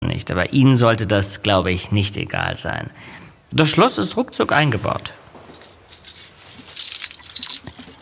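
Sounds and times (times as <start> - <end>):
speech: 0.2 - 5.2
bunch of apartment building keys jangling: 5.5 - 8.0.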